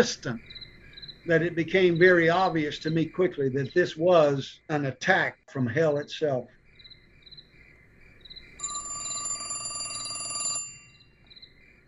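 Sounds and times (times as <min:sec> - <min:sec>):
speech: 0:00.0 - 0:00.6, 0:01.2 - 0:06.6
insects chirping: 0:00.0 - 0:11.8
telephone ringing: 0:08.6 - 0:11.2.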